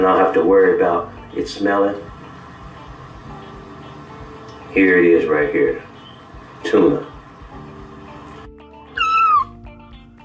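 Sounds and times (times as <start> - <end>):
speech: 0.0 - 2.2, 4.7 - 5.9, 6.6 - 7.1
cat meowing: 8.9 - 9.6.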